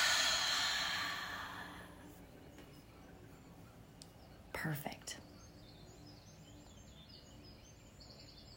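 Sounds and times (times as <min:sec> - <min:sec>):
deep breath in: 0:00.0 - 0:02.0
deep exhale after breathing in: 0:00.0 - 0:02.0
speech: 0:04.6 - 0:05.3.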